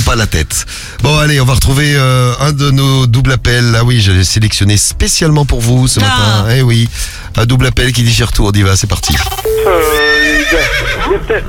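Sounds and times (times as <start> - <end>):
speech: 0.1 - 11.4
person on a phone call imitating a horse neigh: 9.3 - 11.4.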